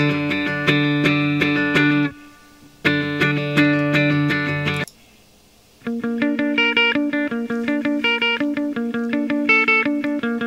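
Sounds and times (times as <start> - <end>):
raw electric guitar strummed chords through a small battery-powered amp: 0.0 - 4.9, 5.8 - 10.4.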